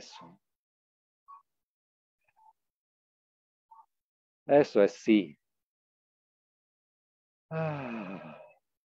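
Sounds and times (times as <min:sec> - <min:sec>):
speech: 0:04.5 - 0:05.4, 0:07.5 - 0:08.2
voiced moaning exhale during a group breathing exercise: 0:07.5 - 0:08.6.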